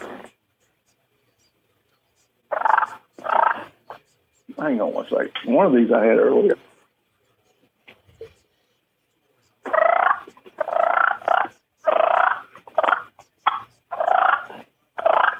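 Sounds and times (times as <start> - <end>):
rolling turkey purrs blown on a mouth call: 2.5 - 3.7, 9.7 - 15.3
speech: 4.6 - 6.6.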